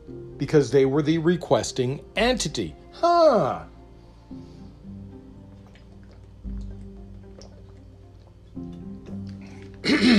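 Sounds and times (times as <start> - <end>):
speech: 0.4 - 3.7, 10.0 - 10.1
faint liquid drips: 5.1 - 9.9
person sipping sparkling water: 5.3 - 10.1
sparkling water fizzing: 5.4 - 9.8
gulp of sparkling water: 5.5 - 10.1.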